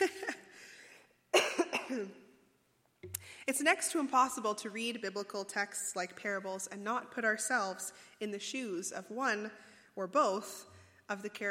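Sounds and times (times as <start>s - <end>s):
faint coughing from a tickle in the throat: 1.3s - 2.2s
speech: 3.5s - 11.4s.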